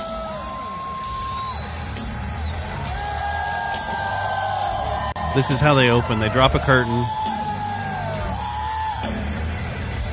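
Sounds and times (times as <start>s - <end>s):
sustained high whistles from a concert crowd: 0.0s - 3.0s
large concert crowd cheering and yelling: 0.0s - 10.1s
speech: 5.4s - 7.3s.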